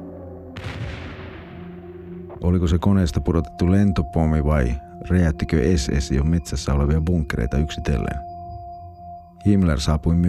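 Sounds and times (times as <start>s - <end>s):
steady low drone: 0.0s - 10.2s
huge explosion shaking a building: 0.6s - 2.2s
speech: 2.4s - 8.3s, 9.4s - 10.2s.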